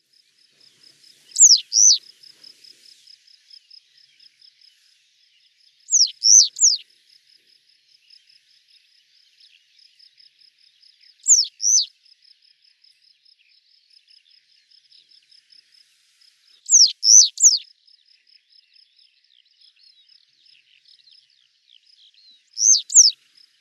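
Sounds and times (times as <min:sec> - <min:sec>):
citrine wagtail calling: 0:01.2 - 0:02.5, 0:05.9 - 0:06.8, 0:11.3 - 0:11.9, 0:16.7 - 0:17.6, 0:22.6 - 0:23.2.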